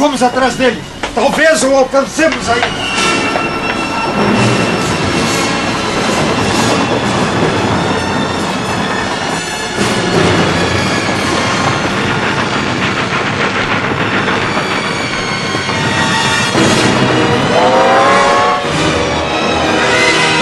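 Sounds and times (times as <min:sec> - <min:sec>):
speech: 0:00.0 - 0:02.9
rhythmic clacking from train wheels: 0:00.0 - 0:20.4
train rattling and rumbling along tracks at night: 0:00.0 - 0:20.4
faint metallic squeal: 0:00.6 - 0:07.1.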